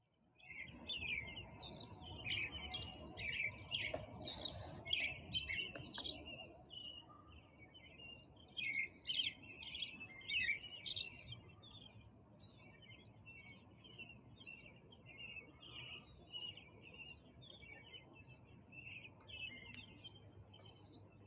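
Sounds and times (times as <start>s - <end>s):
birds singing in the early morning: 0.4s - 21.2s.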